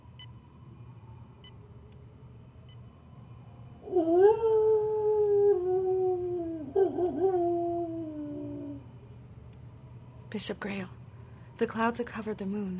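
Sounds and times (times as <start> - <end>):
werewolf howling at night: 3.8 - 8.9
speech: 10.4 - 11.0, 11.6 - 12.7.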